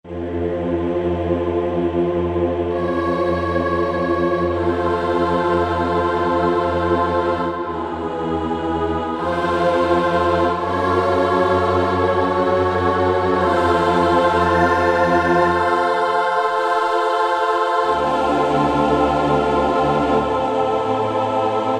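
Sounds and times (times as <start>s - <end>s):
choir on Korg 05RW: 0.0s - 21.7s.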